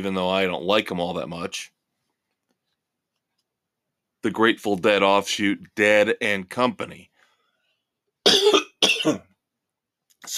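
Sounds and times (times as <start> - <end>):
speech: 0.0 - 1.8, 4.2 - 7.1, 8.2 - 9.3
cough: 8.2 - 9.4.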